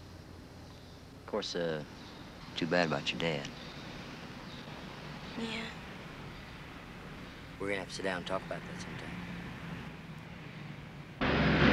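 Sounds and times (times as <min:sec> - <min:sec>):
speech: 0:01.3 - 0:02.0, 0:02.6 - 0:03.6, 0:05.4 - 0:05.8, 0:07.6 - 0:09.3
airplane engine roar coming in to land on a runway: 0:08.4 - 0:11.7.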